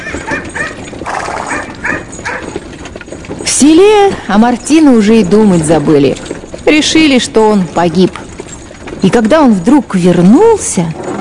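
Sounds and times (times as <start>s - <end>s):
dog barking in sharp bursts: 0.0s - 0.8s, 1.4s - 2.6s
speech: 3.6s - 8.2s, 9.0s - 11.1s.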